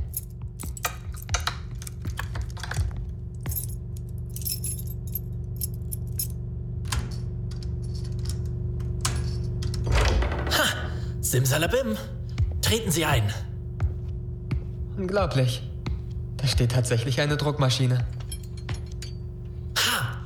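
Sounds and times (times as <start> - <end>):
keys scraping against a cellar lock: 0.0 - 6.3, 6.9 - 9.9, 18.1 - 19.3
metal keys jangling: 0.0 - 9.8, 18.1 - 20.2
steady low hum: 0.0 - 20.2
speech: 11.3 - 13.5, 15.0 - 15.7, 16.4 - 18.2.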